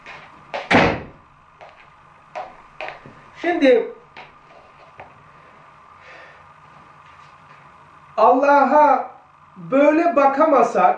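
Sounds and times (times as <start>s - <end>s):
door pushed shut with a heavy thud: 0.6s - 1.2s
speech: 3.4s - 4.0s, 8.2s - 10.9s.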